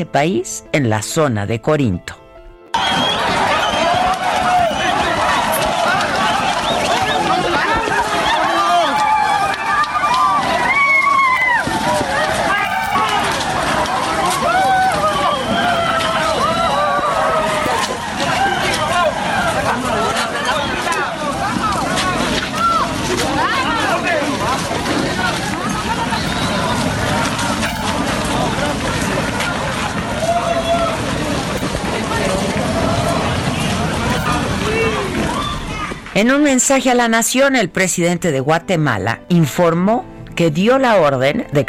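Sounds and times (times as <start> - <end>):
speech: 0.0 - 2.2, 36.2 - 41.6
pounding footsteps of a large crowd rushing forward on foot: 2.7 - 37.6
scattered shouting voices: 2.8 - 36.1.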